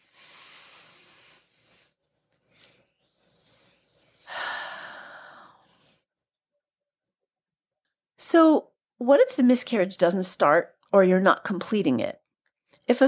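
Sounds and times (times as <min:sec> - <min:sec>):
deep slow breathing: 0:00.0 - 0:06.0
speech: 0:08.3 - 0:12.2.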